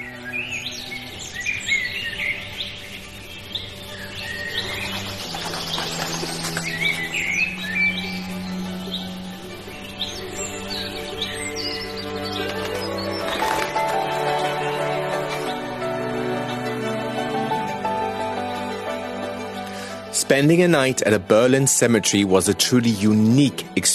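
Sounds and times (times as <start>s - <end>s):
soft sustained low tonal backing: 0.0s - 20.1s
dawn chorus of many birds singing at a cemetery: 0.0s - 23.9s
speech: 20.3s - 23.9s.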